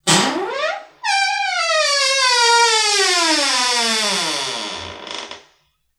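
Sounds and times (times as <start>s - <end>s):
door creaking: 0.0s - 5.6s.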